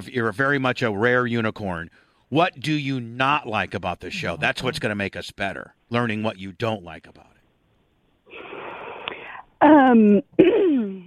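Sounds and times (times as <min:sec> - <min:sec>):
speech: 0:00.0 - 0:07.4, 0:09.6 - 0:11.0
woman clearing her throat: 0:10.2 - 0:11.0.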